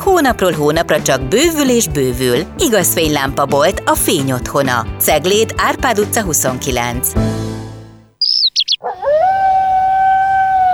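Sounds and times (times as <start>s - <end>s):
speech: 0.1s - 7.4s
quick high bird chirps: 8.2s - 9.0s
dog howling: 8.5s - 10.7s.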